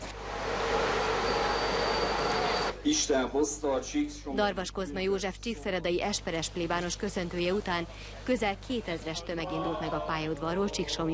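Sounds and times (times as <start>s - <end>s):
pilgrim train pulling into a railway station: 0.0s - 2.8s
speech: 2.8s - 11.1s.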